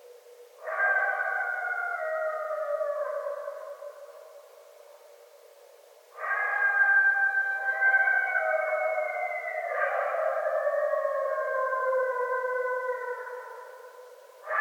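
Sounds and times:
coyotes howling: 0.0s - 14.5s.

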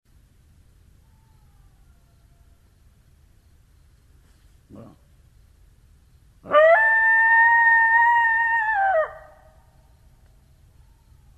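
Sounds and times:
coyote howl: 1.0s - 2.7s, 6.4s - 9.6s.

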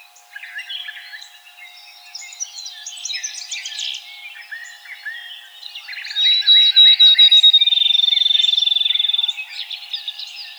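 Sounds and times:
field sparrow song with high whistle and trill: 6.0s - 9.4s
other birds chattering and twittering: 6.0s - 10.5s.

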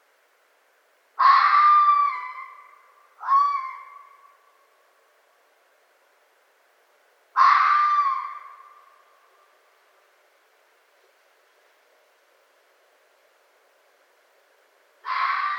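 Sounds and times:
red fox screams with harsh hoarse wails: 1.2s - 4.4s, 7.4s - 9.0s, 15.0s - 15.5s.

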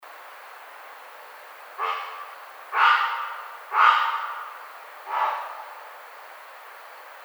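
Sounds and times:
great blue heron calling: 0.0s - 7.2s.

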